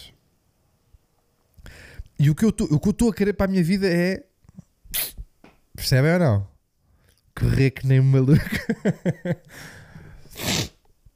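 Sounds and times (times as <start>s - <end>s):
speech: 2.2s - 4.3s, 5.8s - 6.5s, 7.4s - 9.8s
loud sniff: 4.9s - 5.3s, 9.5s - 10.9s.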